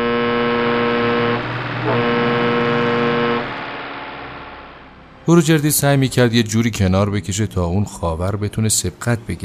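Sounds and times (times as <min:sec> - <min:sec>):
deep loud truck air horn blaring: 0:00.0 - 0:04.2
speech: 0:05.3 - 0:09.4.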